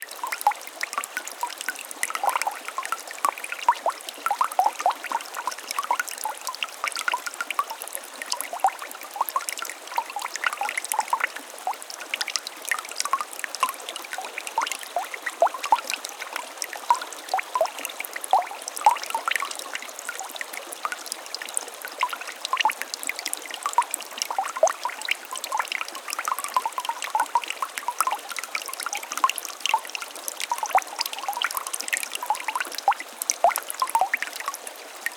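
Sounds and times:
small waterfall of flowing water in the wilderness: 0.0 - 35.1.

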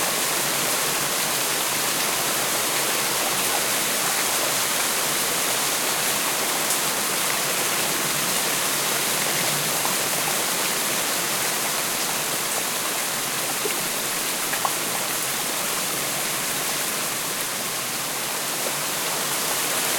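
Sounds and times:
moderate rain on vegetation: 0.0 - 19.9.

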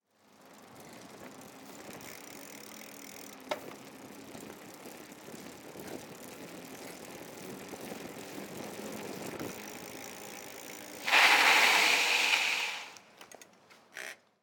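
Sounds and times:
bicycle skidding and drifting on concrete: 0.3 - 14.2.

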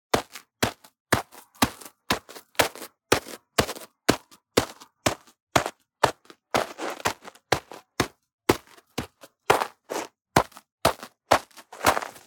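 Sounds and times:
footsteps in snow: 0.2 - 4.8, 5.6 - 12.2.

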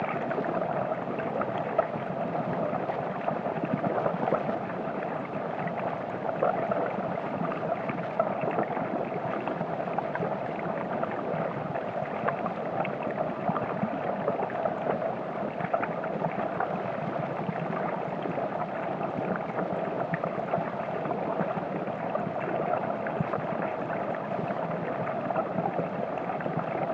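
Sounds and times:
fountain gushing underwater with a generous flow: 0.0 - 26.9.

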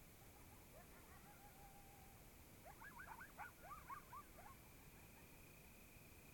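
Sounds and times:
several coyotes yipping in Oregon: 0.1 - 6.1.

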